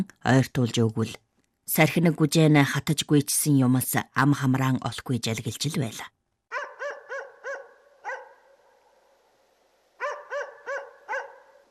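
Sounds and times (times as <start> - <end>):
speech: 0.0 - 6.2
dog barking: 6.5 - 9.1, 10.0 - 11.7.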